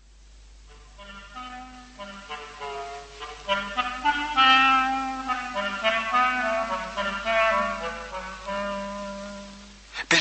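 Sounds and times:
soft orchestral accompaniment: 0.6s - 9.8s
clarinet playing a playful sneaky tune: 0.7s - 9.9s.

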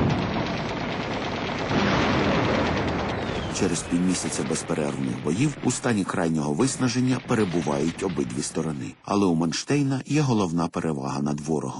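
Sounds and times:
fire from five machine guns: 0.0s - 9.0s
heavier blasts from 45-mm guns: 0.0s - 9.1s
speech: 3.6s - 11.7s.

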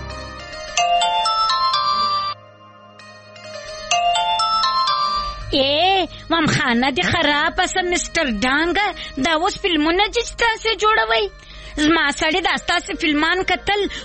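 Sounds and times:
telephone ringing with an electronic ringtone: 0.4s - 5.5s
speech: 6.3s - 14.0s.

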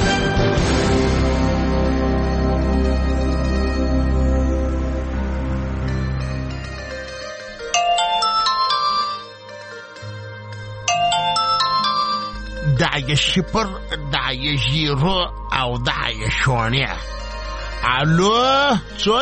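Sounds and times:
loud low music: 0.0s - 7.4s, 12.4s - 19.1s
electronic telephone ringtone with bright repeating melodic tones: 6.7s - 12.6s
speech: 13.1s - 17.2s, 17.8s - 19.1s.

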